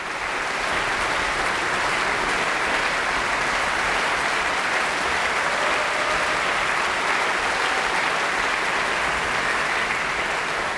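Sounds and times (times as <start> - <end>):
large concert audience applauding in a concert hall: 0.0 - 10.7
faint cheers from concert audience: 5.4 - 6.8.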